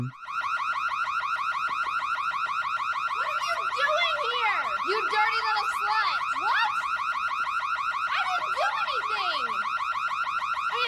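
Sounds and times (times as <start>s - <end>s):
speech: 0.0s - 0.2s
fire alarm sounding: 0.0s - 10.8s.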